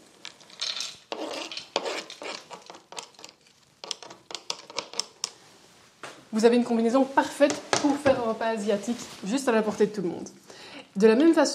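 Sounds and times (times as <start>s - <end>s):
cashew nuts dropping onto a plate: 0.2s - 1.8s, 2.6s - 5.3s
speech: 6.3s - 11.5s.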